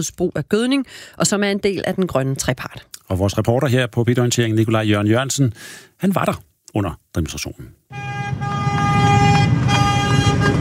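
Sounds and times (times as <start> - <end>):
speech: 0.0 - 8.5
tractor horns honking during a farmers' demonstration at Christiansborg Palace Square: 7.9 - 10.5
low rumble of tractor engines driving past: 8.0 - 10.5.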